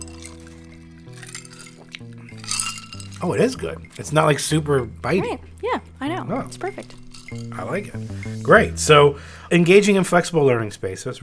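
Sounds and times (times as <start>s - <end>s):
ginger beer pouring into a glass: 0.0s - 3.4s, 6.9s - 7.5s
speech: 3.2s - 11.2s.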